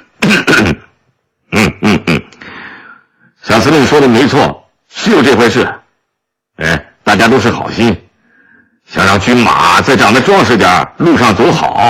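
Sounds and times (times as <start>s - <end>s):
factory director clearing throat: 0.1s - 0.9s, 1.5s - 2.4s
speech: 3.6s - 5.8s, 6.6s - 8.0s, 8.9s - 11.8s.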